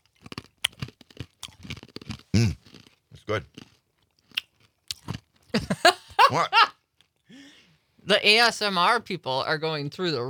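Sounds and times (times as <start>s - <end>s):
person chewing chewy sticky food: 0.0s - 5.6s
speech: 2.4s - 2.6s, 3.3s - 3.6s, 6.3s - 6.7s, 8.1s - 10.2s
laughter: 5.6s - 6.7s.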